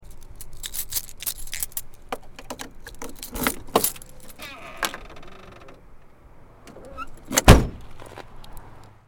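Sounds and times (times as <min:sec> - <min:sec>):
car trunk opening and closing: 0:02.4 - 0:05.8, 0:06.6 - 0:07.9.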